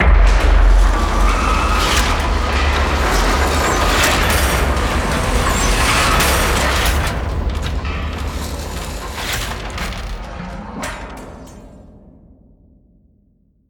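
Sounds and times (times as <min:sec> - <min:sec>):
power tower ride moving up and down: 0:00.0 - 0:11.9.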